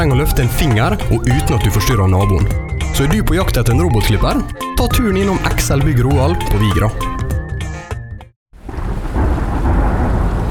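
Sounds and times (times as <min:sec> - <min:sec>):
speech: 0:00.0 - 0:07.2
music: 0:00.0 - 0:08.4
deep rolling thunder rumble: 0:08.6 - 0:10.4
heavy rain: 0:08.6 - 0:10.4.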